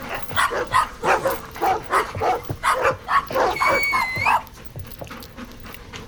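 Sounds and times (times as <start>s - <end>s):
dogs barking in rapid yaps: 0.0s - 4.6s
dogs panting excitedly: 0.0s - 6.0s.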